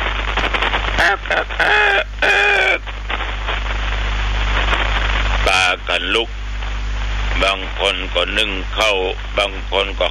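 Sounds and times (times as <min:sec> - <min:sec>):
steady hiss of noise: 0:00.0 - 0:10.0
chickens crowing: 0:01.0 - 0:02.8
speech: 0:06.0 - 0:06.4, 0:07.4 - 0:10.0.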